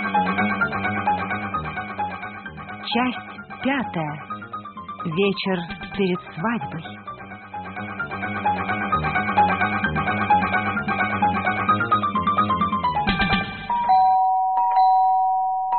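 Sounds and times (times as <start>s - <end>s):
rhythmic music: 0.0s - 13.8s
speech: 2.9s - 4.3s, 5.0s - 7.0s
tonal two-note doorbell chiming: 13.7s - 15.7s.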